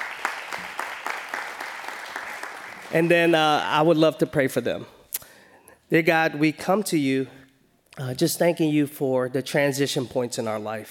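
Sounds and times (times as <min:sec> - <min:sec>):
audience applauding at a youth ministry gathering: 0:00.0 - 0:03.4
speech: 0:02.9 - 0:05.0, 0:05.9 - 0:07.4, 0:08.0 - 0:10.9.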